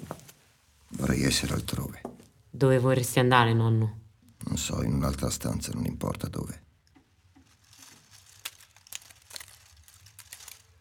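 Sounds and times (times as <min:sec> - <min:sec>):
speech: 0:01.0 - 0:02.0, 0:02.6 - 0:04.0, 0:04.6 - 0:06.6
dry leaves skittering and landing on a hard terrace: 0:07.5 - 0:10.7.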